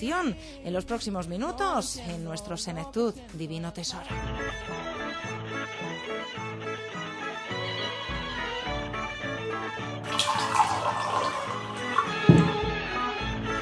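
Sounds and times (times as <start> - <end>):
speech: 0.0 - 7.2
soft music: 0.0 - 13.6
water pouring from a small bottle into a glass: 10.0 - 12.8
small knocks: 12.1 - 12.7.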